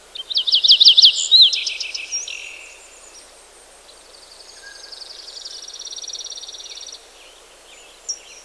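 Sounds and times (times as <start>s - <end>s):
steady background hiss: 0.0s - 8.4s
bird twittering: 0.1s - 3.2s, 4.4s - 7.0s.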